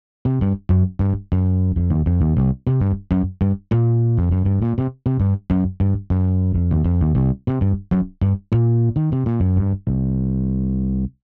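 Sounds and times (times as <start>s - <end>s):
warm compressed bass: 0.2s - 11.2s.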